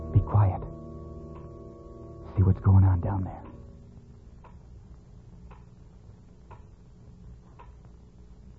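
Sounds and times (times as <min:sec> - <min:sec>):
clock ticking: 0:00.0 - 0:03.7, 0:05.4 - 0:05.7, 0:06.4 - 0:06.8, 0:07.5 - 0:08.5
low room hum: 0:00.0 - 0:08.5
speech: 0:02.4 - 0:03.4.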